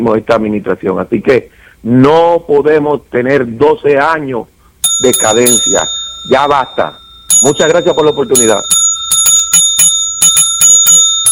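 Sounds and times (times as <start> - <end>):
speech: 0.0 - 8.8
small bell ringing: 4.8 - 11.3.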